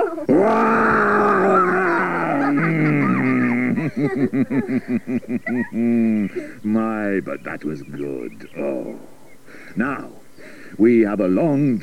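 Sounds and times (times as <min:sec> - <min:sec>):
laughter: 0:00.0 - 0:07.2
speech: 0:00.2 - 0:00.6, 0:04.0 - 0:11.8
lion roaring and grunting: 0:00.3 - 0:04.1.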